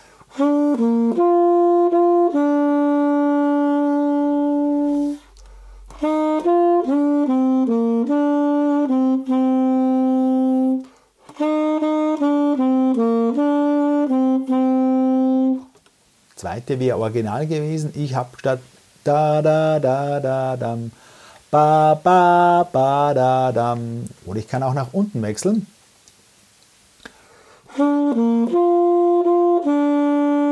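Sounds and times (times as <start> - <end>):
solo melody with upper neighbor-note variations: 0.0 - 15.7, 19.1 - 20.9, 21.5 - 24.1, 27.7 - 30.5
speech: 0.4 - 1.4, 16.4 - 25.7.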